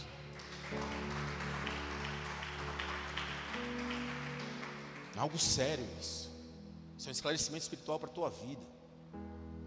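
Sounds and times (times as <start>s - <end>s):
large crowd applauding: 0.0s - 5.5s
sustained keyboard or organ chords: 0.0s - 9.6s
speech: 5.2s - 6.2s, 7.0s - 8.8s.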